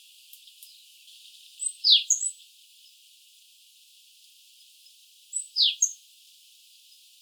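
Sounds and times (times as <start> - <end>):
Eurasian blue tit Cyanistes caeruleus calling with high thin chirps: 1.6 - 2.3, 5.4 - 6.0.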